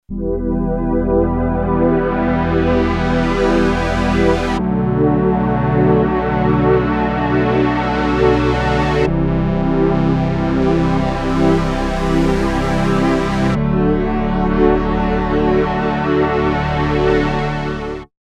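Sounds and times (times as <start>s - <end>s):
synthesizer pad major chord: 0.1s - 18.1s.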